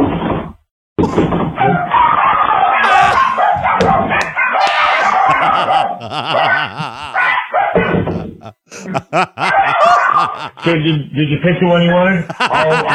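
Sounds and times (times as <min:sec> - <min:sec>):
rescued chihuahuas barking and yapping: 0:01.6 - 0:08.2, 0:09.4 - 0:10.6
laughter: 0:02.8 - 0:03.4, 0:04.2 - 0:12.9
speech: 0:06.0 - 0:07.1, 0:09.1 - 0:12.9.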